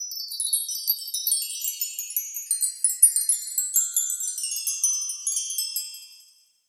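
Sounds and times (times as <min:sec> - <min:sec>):
high-pitched jingling chimes in a slow fall: 0:00.0 - 0:06.6.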